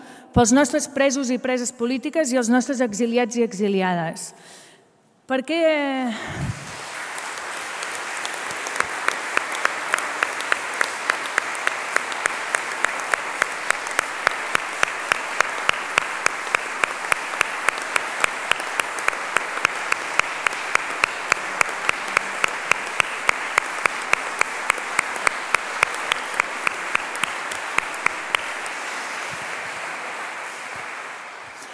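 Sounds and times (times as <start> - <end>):
speech: 0.4 - 4.6, 5.3 - 6.6
crowd applauding loudly: 6.4 - 31.7.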